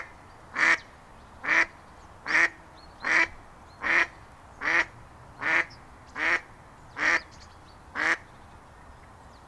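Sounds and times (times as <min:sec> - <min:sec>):
Mallard quacking with loud single nasal quacks: 0:00.0 - 0:00.8, 0:02.3 - 0:06.4, 0:07.0 - 0:07.2, 0:08.0 - 0:08.2
faint background hiss: 0:00.0 - 0:09.4.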